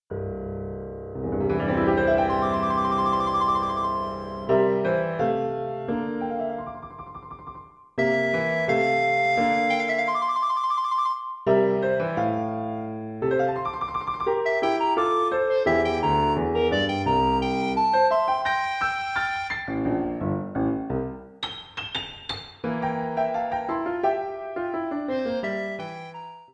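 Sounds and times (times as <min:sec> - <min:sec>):
piano playing in a duet: 0:00.1 - 0:26.5
recorder playing in a duet: 0:02.2 - 0:04.5, 0:08.0 - 0:11.5, 0:14.4 - 0:20.0, 0:25.1 - 0:26.5.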